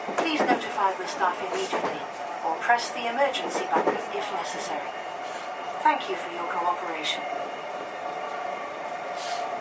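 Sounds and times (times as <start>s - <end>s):
rumble and hum of an electric train arriving at a station heard from inside: 0.0s - 9.5s
speech: 0.8s - 5.1s, 5.8s - 7.5s
sharp hiss of air: 9.1s - 9.5s.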